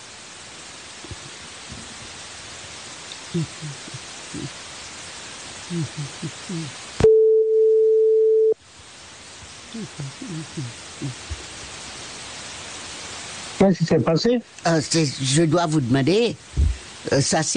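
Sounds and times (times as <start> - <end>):
constant hiss: 0.0 - 17.5
speech: 3.3 - 4.7, 5.7 - 6.9, 9.7 - 11.5, 13.6 - 17.5
telephone busy tone after call hung up: 7.0 - 8.6.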